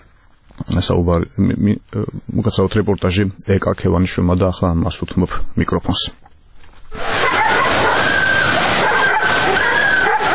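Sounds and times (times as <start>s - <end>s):
speech: 0.7s - 6.3s
many dogs barking and yipping at a flooded dog shelter in Tbilisi: 7.0s - 10.3s.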